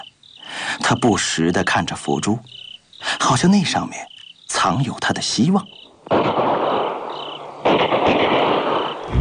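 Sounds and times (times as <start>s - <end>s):
speech: 0.9s - 2.6s, 3.2s - 6.6s
sustained burst of dense crackling gunfire: 6.1s - 9.1s.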